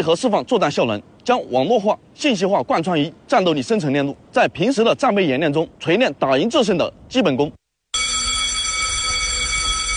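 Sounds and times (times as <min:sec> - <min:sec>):
speech: 0:00.0 - 0:07.6
urgent alarm sounding across air force airborne unit barracks during a readiness drill: 0:08.0 - 0:09.9.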